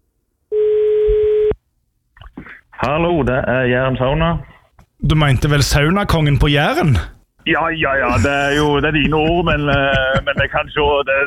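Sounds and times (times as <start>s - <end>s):
steady electronic telephone line tone before a call: 0.5s - 1.5s
speech: 2.8s - 11.2s
laughter: 8.0s - 11.2s.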